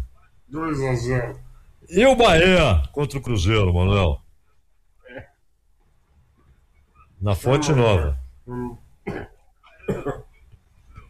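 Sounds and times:
speech: 0.5s - 4.2s, 7.2s - 9.3s
person coughing: 9.0s - 10.4s.

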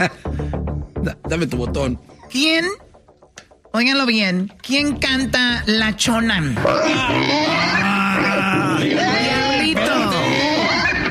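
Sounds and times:
speech: 0.0s - 2.8s, 3.7s - 9.4s
pig oinking buzzer sound effect: 6.6s - 11.0s.

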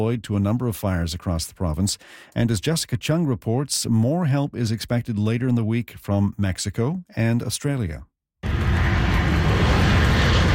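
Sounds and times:
speech: 0.0s - 8.1s
passenger plane engines roaring while landing: 8.4s - 10.5s.

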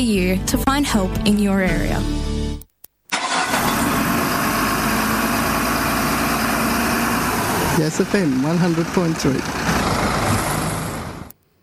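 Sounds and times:
speech: 0.0s - 2.3s, 7.8s - 9.6s
truck passing outside with engine and road noise: 3.3s - 11.3s.

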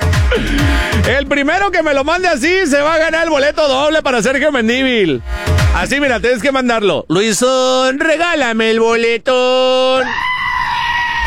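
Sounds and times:
person screaming loudly: 0.3s - 1.1s, 10.0s - 11.2s
speech: 0.4s - 10.3s.

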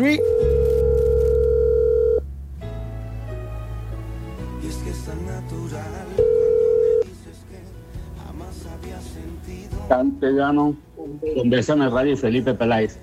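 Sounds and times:
speech: 0.0s - 0.5s, 9.9s - 13.0s
telephone tone as a radio station dials a listener: 0.0s - 2.2s, 6.2s - 7.0s.

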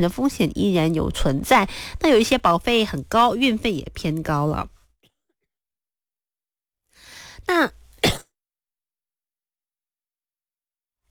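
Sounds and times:
speech: 0.0s - 4.8s, 7.5s - 7.8s
person coughing: 8.0s - 8.3s.

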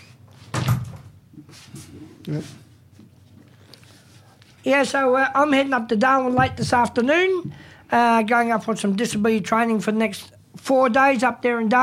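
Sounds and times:
door opening with a heavy thud: 0.5s - 1.1s
speech: 2.3s - 2.6s, 4.6s - 11.8s.

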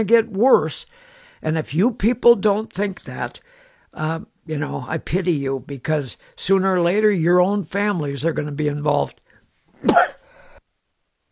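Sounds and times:
speech: 0.0s - 9.2s, 9.8s - 10.2s
loud sneeze: 9.8s - 10.3s.

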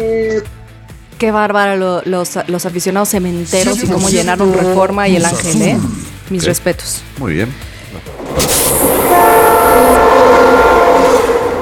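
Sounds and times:
speech: 1.2s - 8.1s
rumble of rail cars: 8.1s - 11.5s
sound effect of a multi-tone train horn blast: 8.5s - 11.5s.

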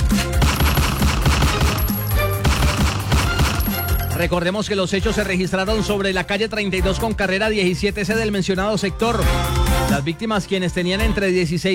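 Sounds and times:
rapid continuous bursts of machine-gun fire: 0.4s - 4.1s
speech: 4.2s - 11.7s.

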